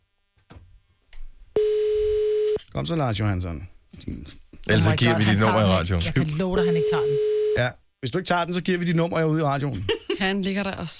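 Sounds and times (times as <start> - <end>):
telephone line tone after a call is hung up: 1.6 - 2.6, 6.6 - 7.6
speech: 2.8 - 10.9.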